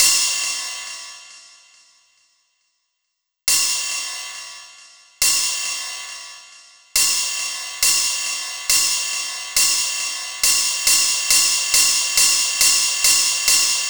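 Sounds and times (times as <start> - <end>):
cymbal loop for dance beats: 3.5 - 13.8.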